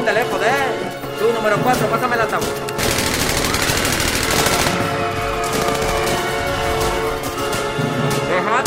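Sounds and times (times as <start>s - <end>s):
speech: 0.1s - 3.0s
rapid gunfire bursts: 2.7s - 7.7s.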